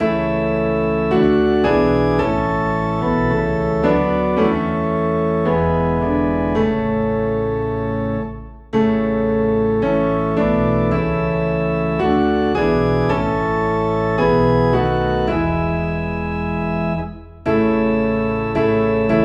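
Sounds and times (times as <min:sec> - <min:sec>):
low organ in A: 0:00.0 - 0:19.2
low piano in A: 0:00.0 - 0:19.2.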